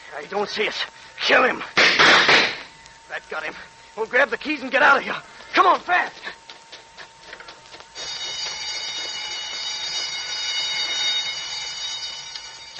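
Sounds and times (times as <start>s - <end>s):
speech: 0.1s - 2.5s, 3.1s - 6.3s
prison escape alarm bell ringing: 8.0s - 12.7s.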